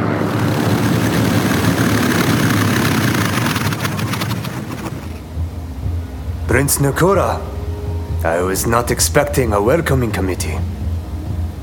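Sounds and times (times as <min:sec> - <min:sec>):
propeller engines of Japanese Zero fighter planes landing and taxiing across tarmac: 0:00.0 - 0:08.1
speech: 0:06.5 - 0:07.5, 0:08.2 - 0:10.8.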